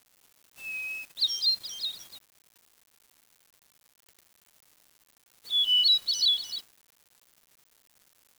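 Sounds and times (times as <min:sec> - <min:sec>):
bird song phrase of a clear high whistle and rapid twittering: 0:00.6 - 0:02.2, 0:05.5 - 0:06.6.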